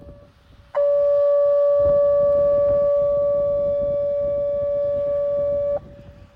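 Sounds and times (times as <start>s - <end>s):
siren being tested: 0.8s - 6.1s.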